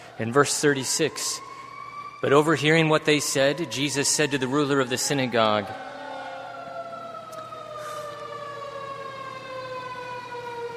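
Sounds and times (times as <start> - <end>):
siren passing outside: 0.0 - 10.7
speech: 0.2 - 1.5, 2.2 - 5.9.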